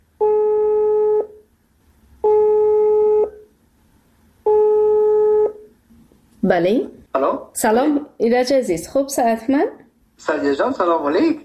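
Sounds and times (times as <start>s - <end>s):
telephone ringback tone of outgoing call: 0.2s - 1.4s, 2.2s - 3.4s, 4.5s - 5.6s
speech: 6.5s - 11.4s.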